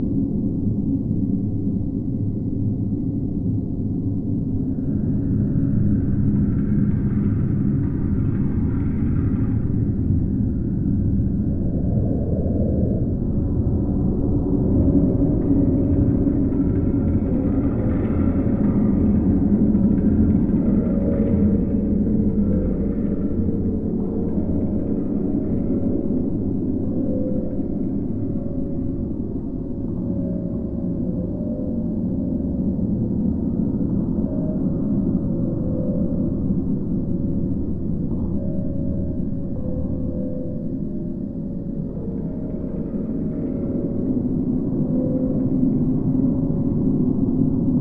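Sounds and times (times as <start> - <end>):
indoor ambience: 0.0 - 47.7.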